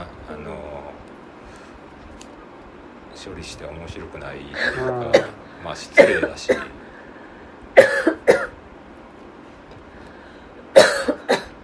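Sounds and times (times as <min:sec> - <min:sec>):
speech: 0:03.2 - 0:06.8
person coughing after choking: 0:04.6 - 0:06.8, 0:07.8 - 0:08.6, 0:10.7 - 0:11.6.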